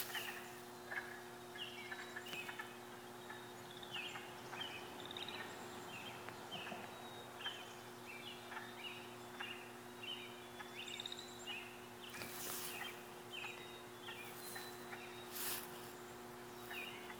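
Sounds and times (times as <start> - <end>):
wood frogs calling: 0.0 - 17.1.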